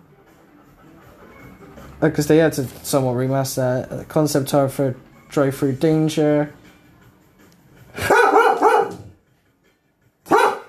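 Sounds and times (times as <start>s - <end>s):
speech: 2.0s - 6.6s
dog barking outside: 8.0s - 9.2s, 10.3s - 10.6s.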